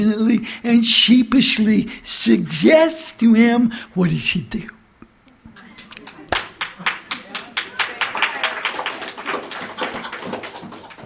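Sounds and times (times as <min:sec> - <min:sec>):
speech: 0:00.0 - 0:04.8
scattered clapping from a small crowd: 0:05.7 - 0:11.0.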